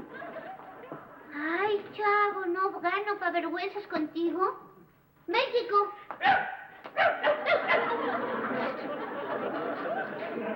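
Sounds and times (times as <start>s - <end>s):
laughter: 0.0s - 1.2s, 7.2s - 10.5s
speech: 1.4s - 4.7s, 5.3s - 7.3s
person imitating yappy dog barks: 6.2s - 7.4s.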